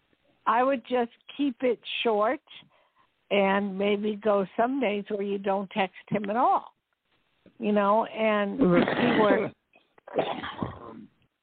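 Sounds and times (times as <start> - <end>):
speech: 0.5 - 2.7, 3.3 - 6.8, 7.6 - 10.6
person coughing into a phone: 8.6 - 11.1.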